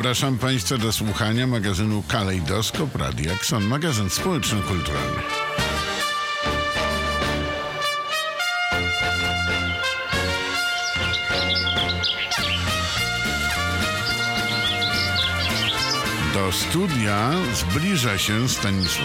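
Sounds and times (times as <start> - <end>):
speech: 0.0 - 5.6, 16.5 - 19.0
loud instrumental music: 2.5 - 19.0
birds singing: 9.7 - 19.0.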